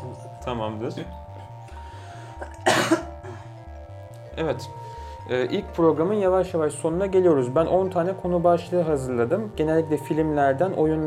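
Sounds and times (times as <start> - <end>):
speech: 0.4 - 1.2, 4.4 - 11.0
person coughing: 2.4 - 3.5.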